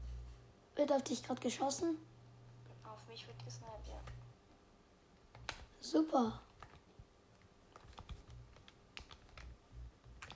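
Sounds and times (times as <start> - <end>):
speech: 0.8 - 2.1, 3.0 - 4.3, 5.8 - 6.5
quiet computer keyboard typing during a shooting video game: 5.3 - 5.7, 6.4 - 10.3.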